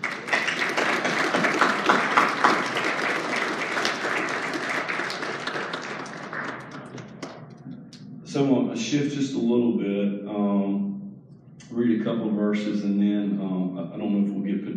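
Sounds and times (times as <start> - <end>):
room full of people clapping: 0.0 - 7.4
speech: 8.4 - 10.8, 12.1 - 14.7.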